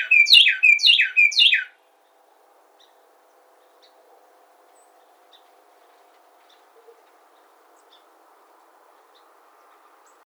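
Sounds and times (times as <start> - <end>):
Carolina wren singing: 0.0 - 1.8.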